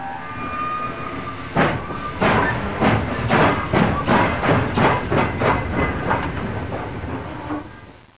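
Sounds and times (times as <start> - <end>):
chugging: 1.5 - 7.9.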